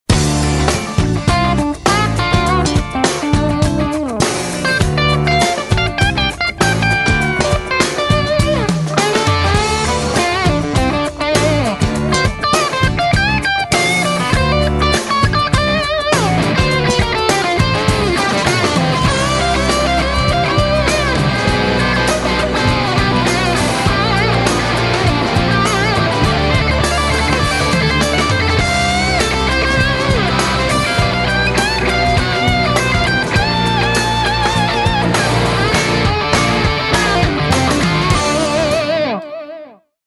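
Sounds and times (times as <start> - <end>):
jam track: 0.1 - 39.6.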